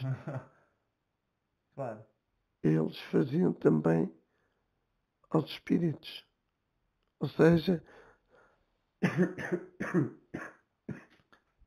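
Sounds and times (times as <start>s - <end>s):
speech: 0.2s - 0.6s, 1.8s - 4.2s, 5.3s - 6.3s, 7.2s - 8.0s, 9.0s - 11.0s
man coughing: 9.0s - 11.2s.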